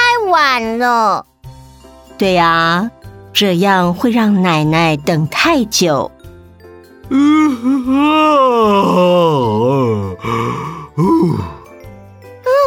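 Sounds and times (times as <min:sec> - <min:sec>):
speech: 0:00.6 - 0:01.3, 0:02.2 - 0:06.2, 0:07.1 - 0:11.6
man yawning loudly: 0:07.1 - 0:11.7.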